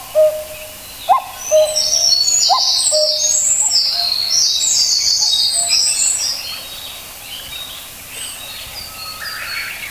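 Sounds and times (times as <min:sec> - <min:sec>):
common cuckoo calling: 0:00.0 - 0:04.3
birds chirping and trilling at high pitch: 0:00.0 - 0:09.8.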